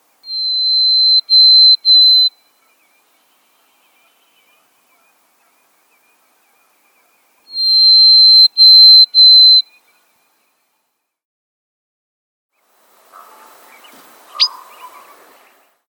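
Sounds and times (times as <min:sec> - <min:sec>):
Harris's sparrow whistling clear steady notes: 0:00.2 - 0:02.4, 0:07.5 - 0:09.8, 0:14.3 - 0:15.0
faint scratchy background noise: 0:01.1 - 0:11.1, 0:12.6 - 0:15.8.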